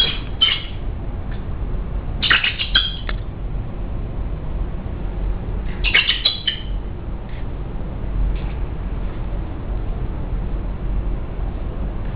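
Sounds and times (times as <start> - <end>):
eagle calls in harsh squawking bursts: 0.0 - 0.8, 2.2 - 3.1, 5.8 - 6.7
steady low rumbling background: 0.0 - 12.1.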